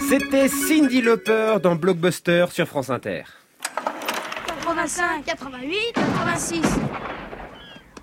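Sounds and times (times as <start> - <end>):
speech: 0.1 - 3.4, 4.7 - 7.2
sharp gunshots: 6.0 - 8.0.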